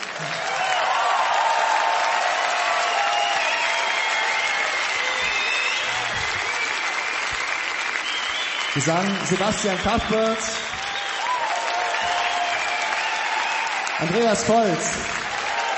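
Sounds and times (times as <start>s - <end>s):
large audience applauding a band: 0.0s - 15.7s
speech: 0.2s - 0.5s, 8.8s - 10.7s, 14.0s - 15.3s.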